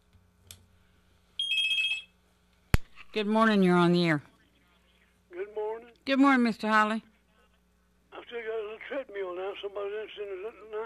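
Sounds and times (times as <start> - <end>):
telephone ringing with an electronic trill: 1.4 - 2.1
speech: 3.1 - 4.3, 6.1 - 7.1, 9.6 - 10.8.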